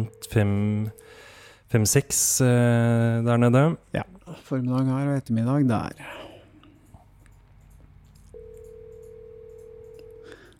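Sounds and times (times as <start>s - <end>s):
speech: 0.0s - 6.2s
low hum: 0.0s - 10.5s
phone ringback tone of an unanswered call: 8.4s - 10.5s.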